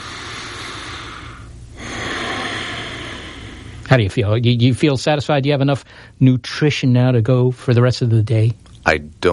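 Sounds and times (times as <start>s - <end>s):
deep breath: 0.0s - 3.9s, 5.8s - 6.2s
speech: 3.9s - 9.3s.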